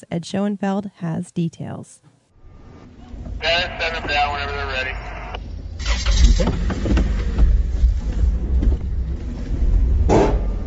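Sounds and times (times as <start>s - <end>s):
speech: 0.0s - 2.1s, 3.4s - 5.1s, 5.8s - 7.1s
cars and trucks loading onto a ferry at a dock: 2.4s - 10.6s.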